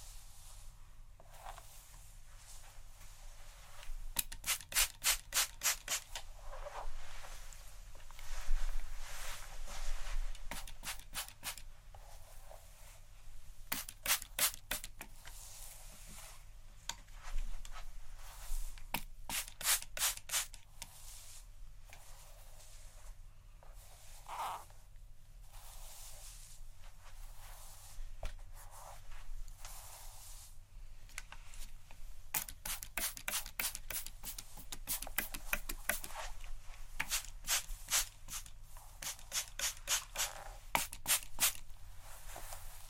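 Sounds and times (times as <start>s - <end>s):
scratching and brushing on hair during scalp massage: 0.0s - 13.1s, 13.8s - 16.5s, 17.1s - 24.7s, 25.4s - 30.6s, 32.4s - 42.8s.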